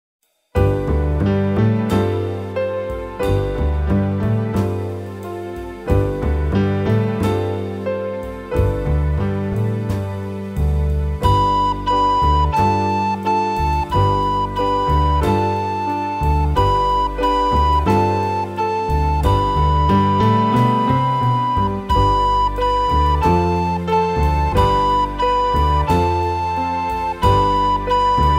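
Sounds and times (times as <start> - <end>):
backing track music: 0.6 - 28.3
recorder playing: 11.2 - 28.3.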